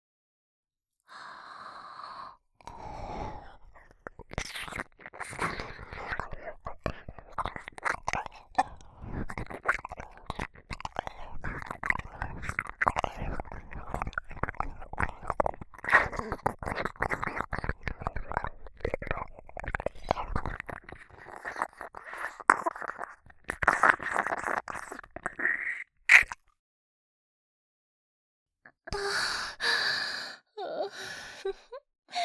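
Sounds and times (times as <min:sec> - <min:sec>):
ASMR mouth nibbling and chewing on an ear: 0:02.6 - 0:26.5
breathy voiced sigh: 0:28.9 - 0:32.2.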